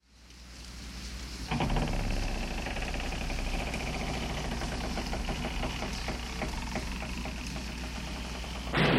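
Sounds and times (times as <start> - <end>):
creaking door closing: 1.5 - 8.8.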